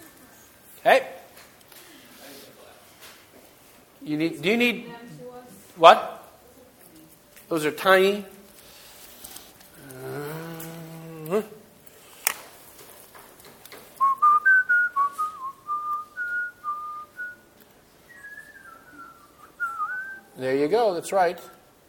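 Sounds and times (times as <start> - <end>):
speech: 0.8 - 1.1, 4.1 - 5.0, 5.8 - 6.2, 7.5 - 8.3, 20.7 - 21.6
person humming or voicing: 9.7 - 11.6
person whistling a short wandering tune: 14.0 - 17.4, 18.1 - 20.4.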